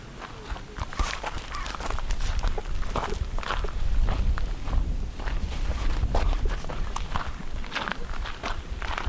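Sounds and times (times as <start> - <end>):
footsteps of people walking toward an ancient burial mound: 0.2 - 9.0.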